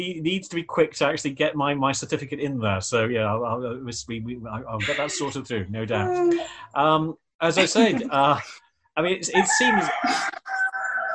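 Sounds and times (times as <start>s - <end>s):
speech: 0.0s - 10.6s
laughter: 2.6s - 10.4s
cockerel crowing: 9.4s - 11.1s.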